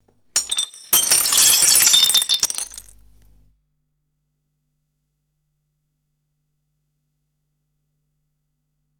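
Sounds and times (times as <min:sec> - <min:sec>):
ceramic crockery shattering and scattering: 0:00.4 - 0:03.0.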